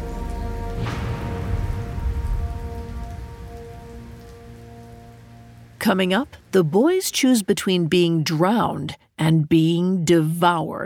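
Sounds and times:
distant thunder rumbling: 0:00.0 - 0:07.2
heavy rain pouring: 0:00.0 - 0:08.6
speech: 0:05.8 - 0:10.8.

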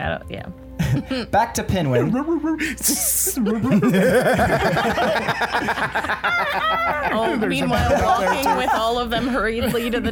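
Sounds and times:
speech: 0:00.0 - 0:10.1
laughter: 0:01.8 - 0:10.1
person hissing in imitation of a snake: 0:02.7 - 0:03.4.

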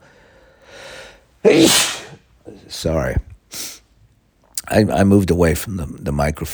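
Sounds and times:
speech: 0:01.4 - 0:02.0, 0:02.8 - 0:03.6, 0:04.7 - 0:06.5
person sneezing: 0:01.4 - 0:02.2.

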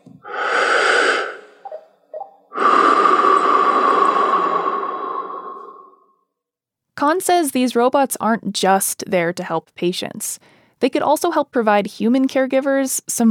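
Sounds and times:
slow deep breathing during a seated yoga-style exercise: 0:00.2 - 0:01.7, 0:02.5 - 0:06.2
speech: 0:07.0 - 0:13.3.

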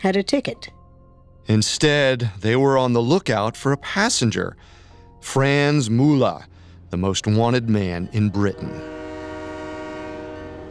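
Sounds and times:
speech: 0:00.0 - 0:00.8, 0:01.5 - 0:09.0
southbound train rumbling into station: 0:07.3 - 0:10.6
train horn sustained blast: 0:07.8 - 0:10.6.

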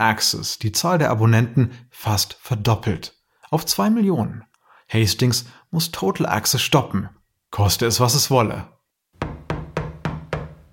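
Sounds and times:
speech: 0:00.0 - 0:08.8
loud heavy knocks on a door: 0:09.2 - 0:10.7.

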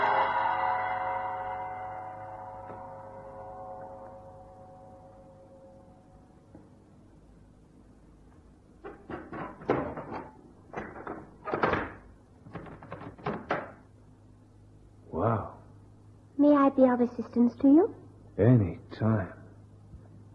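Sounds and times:
deep gong sounding inside a temple: 0:00.0 - 0:06.5
uneven clattering knocks and thuds: 0:08.8 - 0:13.8
speech: 0:16.8 - 0:19.4.

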